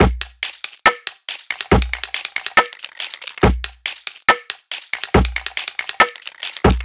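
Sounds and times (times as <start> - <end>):
organic dubstep percussion loop at 140 BPM: 0.0 - 6.8.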